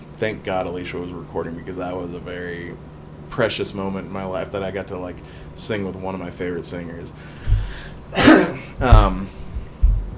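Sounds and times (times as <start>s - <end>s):
speech: 0.2s - 9.4s
harsh coughs: 8.1s - 9.2s
low throat-clearing grunt: 8.1s - 9.2s.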